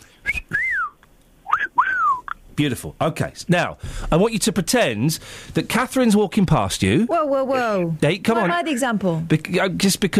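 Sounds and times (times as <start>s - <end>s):
person whistling sliding notes: 0.2s - 2.4s
speech: 2.6s - 10.1s.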